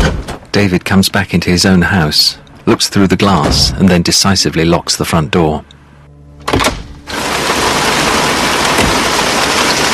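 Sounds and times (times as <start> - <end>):
speech: 0.6 - 5.8
pouring rain: 7.1 - 9.9.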